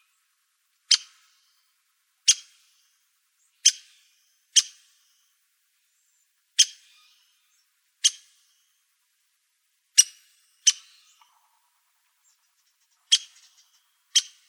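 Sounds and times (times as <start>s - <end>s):
ladder-backed woodpecker pik calls: 0.9s - 5.3s, 6.6s - 8.7s, 10.0s - 14.4s.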